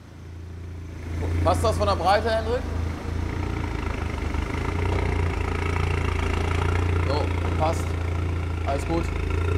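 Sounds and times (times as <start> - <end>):
loud car engine idling: 0.1 - 9.5
speech: 1.5 - 2.8, 7.1 - 8.0, 8.7 - 9.5.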